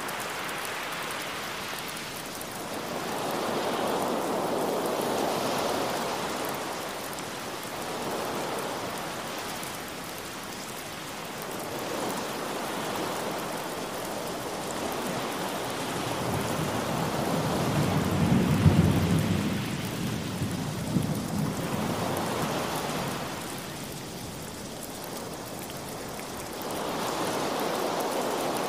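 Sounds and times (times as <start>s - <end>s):
ocean surf washing: 0.0s - 28.6s
steady rain: 0.0s - 28.6s
low roll of thunder rumbling: 16.2s - 23.3s.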